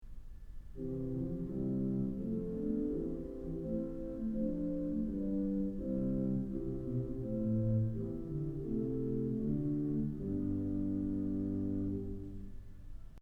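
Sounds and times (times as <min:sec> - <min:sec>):
Principal Flute organ stops in an auditorium: 0:00.8 - 0:12.7.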